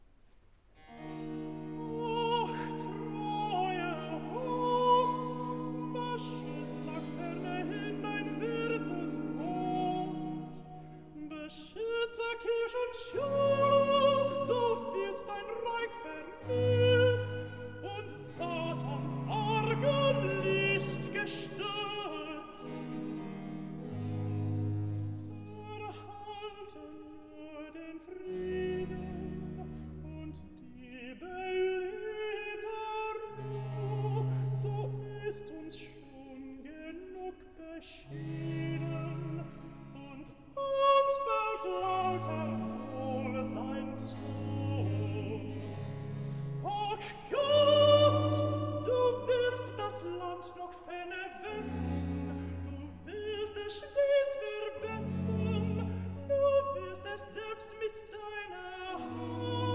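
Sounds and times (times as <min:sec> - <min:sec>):
alto voice singing a recitative: 0:01.1 - 0:59.7.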